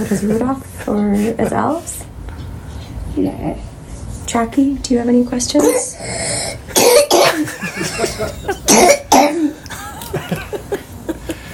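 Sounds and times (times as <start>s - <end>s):
speech: 0.0s - 2.1s, 3.2s - 3.7s, 4.3s - 6.2s, 6.8s - 8.9s
breathing sounds: 5.9s - 6.7s, 11.2s - 11.5s
coughing into a microphone: 6.7s - 7.5s, 8.7s - 9.5s
laughter: 7.4s - 8.7s, 9.6s - 11.5s.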